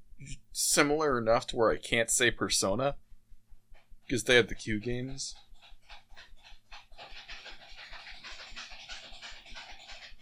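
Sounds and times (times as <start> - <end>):
speech: 0.2 - 3.0, 4.1 - 6.0
dog panting: 3.7 - 10.2.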